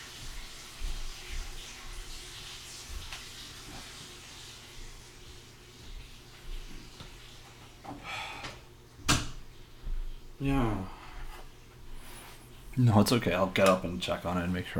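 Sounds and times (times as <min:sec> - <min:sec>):
water running as a bath is being filled: 0:00.0 - 0:14.7
bathroom door clicking shut with a sharp knock: 0:09.0 - 0:09.4
speech: 0:10.4 - 0:10.9, 0:12.8 - 0:14.7.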